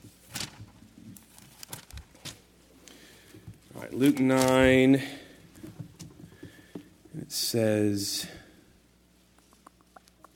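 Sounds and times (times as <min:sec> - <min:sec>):
audience turning Bible pages: 0:00.2 - 0:02.4, 0:03.9 - 0:04.9
speech: 0:03.9 - 0:05.2, 0:07.5 - 0:08.4.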